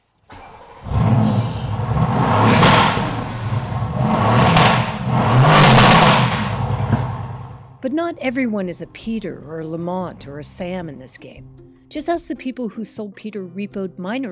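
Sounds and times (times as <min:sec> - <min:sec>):
car on air suspension cranking and starting: 0:00.0 - 0:10.8
air suspension airbags hissing as they raise the car: 0:00.3 - 0:07.7
car engine deep rumbling idle: 0:00.3 - 0:07.8
car exhaust revving: 0:00.3 - 0:07.8
speech: 0:08.0 - 0:14.3.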